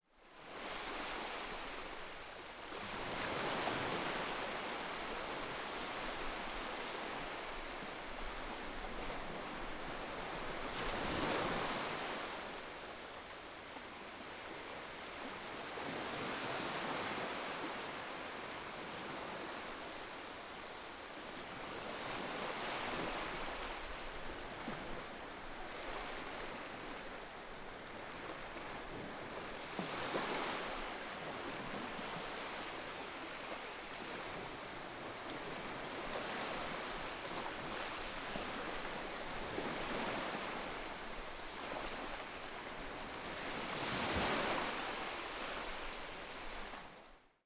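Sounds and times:
gentle ocean waves: 0.2 - 47.3.

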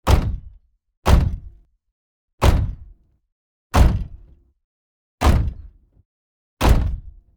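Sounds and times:
heavy robot footstep: 0.0 - 1.6, 2.4 - 3.0, 3.8 - 4.3, 5.2 - 5.8, 6.6 - 7.2.

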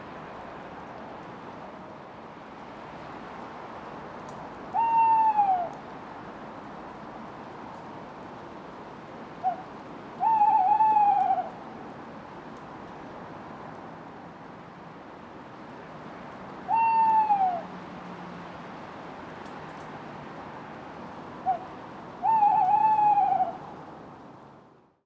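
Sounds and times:
male tawny owl hooting: 4.7 - 5.8, 9.4 - 11.6, 16.7 - 17.7, 21.4 - 23.6.

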